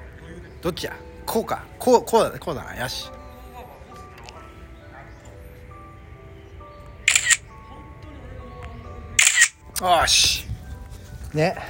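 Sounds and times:
speech: 0:00.6 - 0:03.2, 0:09.8 - 0:10.5, 0:11.3 - 0:11.6
camera shutter bursts taking a commemorative photo during golf practice: 0:07.1 - 0:07.4, 0:09.2 - 0:09.6.

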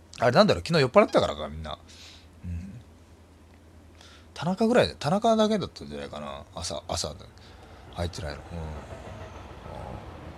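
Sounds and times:
speech: 0:00.2 - 0:02.6, 0:04.4 - 0:09.1
train passing: 0:06.1 - 0:10.3.

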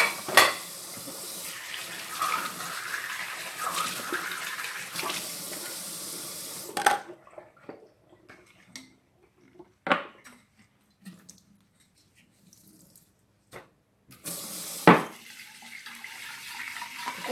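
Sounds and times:
plates and utensils clinking and knocking: 0:00.0 - 0:00.7
running tap water while washing dishes: 0:00.0 - 0:06.8, 0:14.2 - 0:17.3.

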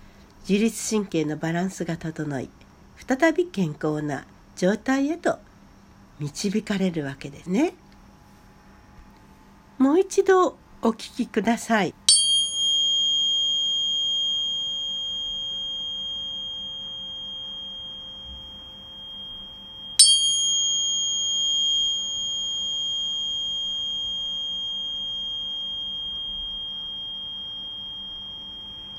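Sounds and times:
speech: 0:00.5 - 0:05.5, 0:06.2 - 0:07.8, 0:09.8 - 0:12.0
528 Hz sine tone: 0:12.0 - 0:28.9
bright ringing chime strikes: 0:12.1 - 0:28.9.

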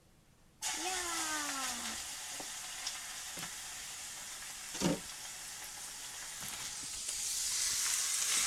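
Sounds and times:
pork sizzling in a hot pot with perilla oil: 0:00.6 - 0:08.4.

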